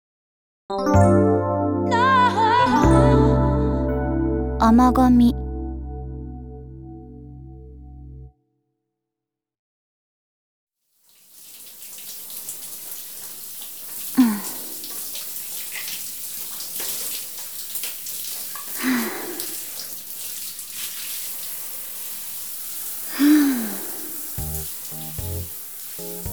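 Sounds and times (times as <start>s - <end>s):
speech: 0.7s - 1.3s, 4.7s - 5.4s
short bits of tonal music: 0.8s - 8.3s, 24.4s - 26.3s
shower water running: 11.0s - 26.3s.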